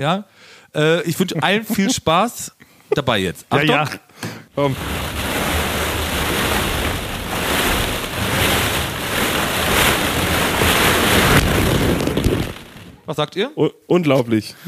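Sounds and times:
speech: 0.0s - 5.0s, 13.1s - 14.6s
laughter: 1.2s - 2.0s, 2.9s - 4.0s
plastic balls shifting as someone wades through a ball pit in socks: 4.6s - 13.1s.

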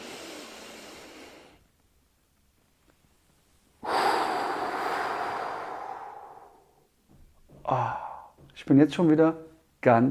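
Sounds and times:
deep breathing exercise inhale and exhale: 0.0s - 1.6s, 3.8s - 6.9s
speech: 8.6s - 10.0s.

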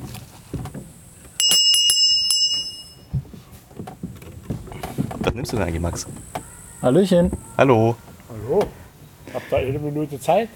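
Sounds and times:
quiet rustling: 0.0s - 10.5s
bright bicycle-style bell ringing: 1.4s - 3.1s
speech: 5.4s - 8.7s, 9.6s - 10.5s.

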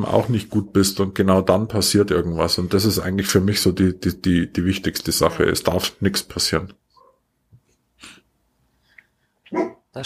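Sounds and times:
speech: 0.0s - 6.8s, 9.5s - 10.0s
dog barks from outdoors: 9.5s - 9.9s.

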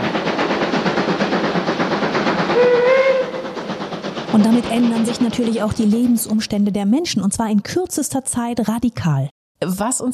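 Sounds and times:
steam train chugging: 0.0s - 7.9s
steam train whistle: 2.5s - 3.5s
speech: 4.4s - 10.1s.

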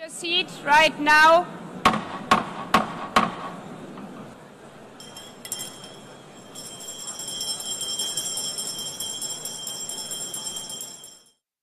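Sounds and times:
speech: 0.1s - 1.6s
gavel knocks: 1.9s - 3.6s
faint room murmur: 3.6s - 11.2s
small hand bell jingling: 5.0s - 11.4s.

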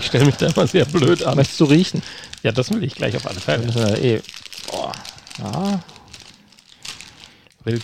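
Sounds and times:
crinkly snack bag being pulled open: 0.0s - 7.8s
speech: 0.1s - 5.9s, 7.6s - 7.8s.

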